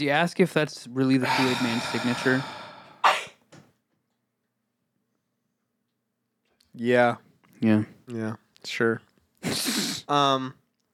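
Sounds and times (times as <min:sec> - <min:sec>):
speech: 0:00.0 - 0:02.6, 0:06.8 - 0:10.6
single loud sneeze: 0:01.2 - 0:03.4, 0:09.4 - 0:10.1.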